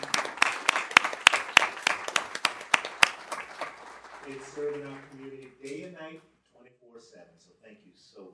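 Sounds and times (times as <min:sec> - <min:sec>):
applause from a small group: 0:00.0 - 0:05.5
speech: 0:04.3 - 0:08.3.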